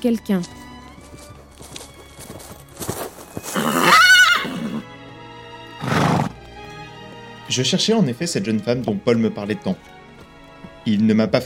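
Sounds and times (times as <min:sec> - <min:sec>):
speech: 0:00.0 - 0:00.6, 0:07.6 - 0:10.0, 0:10.9 - 0:11.4
horse hooves clopping: 0:00.3 - 0:04.9, 0:05.6 - 0:11.4
horse neighing: 0:03.4 - 0:04.9, 0:05.8 - 0:06.4.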